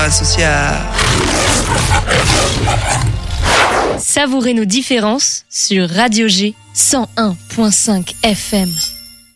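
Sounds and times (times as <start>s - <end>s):
speech: 0.1s - 9.0s
dense low lion growling: 0.9s - 4.0s
lion roar from a studio logo: 0.9s - 4.0s.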